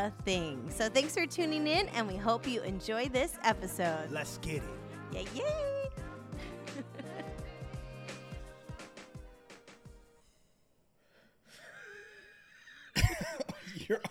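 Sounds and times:
speech: 0:00.0 - 0:06.0, 0:13.9 - 0:14.1
upbeat music with punchy beats: 0:00.0 - 0:10.2
person yawning with a wavering voiced tone: 0:11.5 - 0:13.0.

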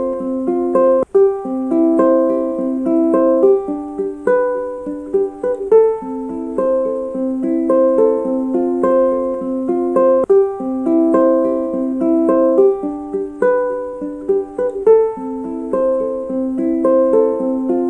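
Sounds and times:
ukulele picked in a repeating pattern: 0:00.0 - 0:17.8.

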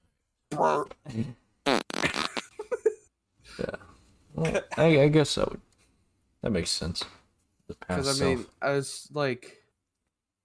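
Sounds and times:
speech: 0:00.6 - 0:01.4, 0:04.4 - 0:05.7, 0:06.4 - 0:09.6
short buzzy fart sounds: 0:01.6 - 0:02.6.

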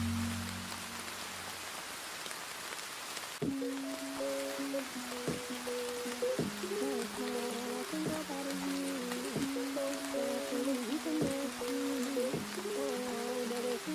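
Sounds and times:
song with bass line and melody: 0:00.0 - 0:01.2, 0:03.4 - 0:13.9
steady rain: 0:00.0 - 0:13.9.

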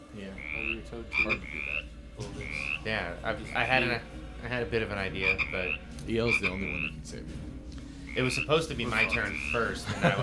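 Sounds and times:
speech: 0:00.2 - 0:07.5, 0:08.2 - 0:10.2
toad croaking: 0:00.3 - 0:04.1, 0:05.1 - 0:07.0, 0:08.0 - 0:09.8
laughter: 0:09.0 - 0:10.2.

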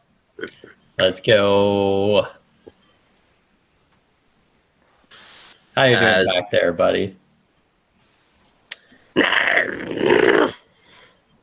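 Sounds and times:
speech: 0:00.4 - 0:02.4, 0:05.8 - 0:07.2
person imitating a hungry animal's growl: 0:09.2 - 0:10.7.

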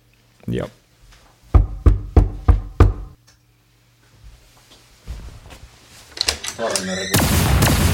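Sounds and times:
faint room noise: 0:00.0 - 0:07.2
speech: 0:00.5 - 0:00.8, 0:06.6 - 0:07.8
firm knocking on a door: 0:01.6 - 0:03.2
quiet shuffling: 0:03.9 - 0:07.0.

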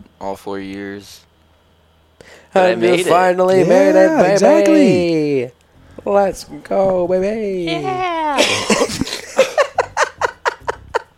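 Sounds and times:
speech: 0:00.2 - 0:01.3, 0:02.2 - 0:09.2
laughter: 0:07.7 - 0:11.1
person coughing: 0:08.4 - 0:09.1.

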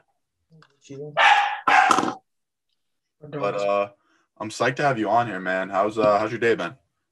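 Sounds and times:
speech: 0:00.8 - 0:02.2, 0:03.2 - 0:06.8
dog barking: 0:01.2 - 0:02.2.

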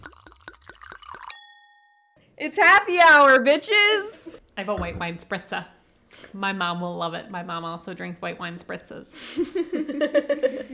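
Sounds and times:
glasses clinking in a happy-hour toast: 0:00.0 - 0:02.2
glass strike ringing as a sustained chime: 0:00.1 - 0:02.2
speech: 0:02.4 - 0:10.7.

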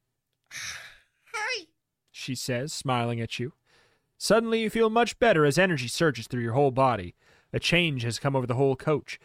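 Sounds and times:
voice imitating a sleeping child's yawn: 0:00.5 - 0:01.1
speech: 0:02.3 - 0:03.6, 0:04.2 - 0:09.2.

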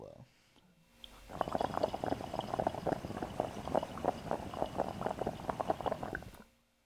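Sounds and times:
water bubbling and gurgling in a dab rig: 0:01.1 - 0:06.4.

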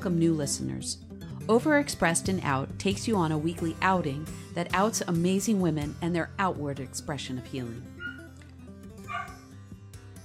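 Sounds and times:
speech: 0:00.0 - 0:07.9
female dog barking: 0:08.0 - 0:08.3, 0:09.1 - 0:09.4.

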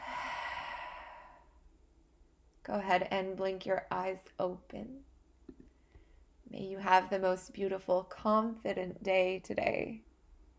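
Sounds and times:
strong breath out: 0:00.0 - 0:01.6
speech: 0:02.6 - 0:05.1, 0:06.5 - 0:10.1.

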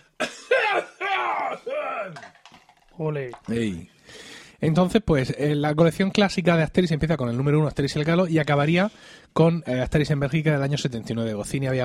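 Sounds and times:
person clearing throat: 0:00.0 - 0:02.2
person coughing: 0:00.0 - 0:02.2
speech: 0:03.0 - 0:04.0, 0:04.6 - 0:11.8.

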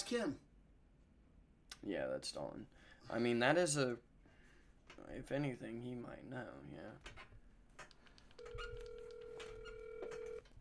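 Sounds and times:
speech: 0:00.1 - 0:00.5, 0:01.8 - 0:04.1, 0:04.9 - 0:07.3
low clatter: 0:06.6 - 0:10.6
phone call ringback tone on speakerphone: 0:08.4 - 0:10.4.

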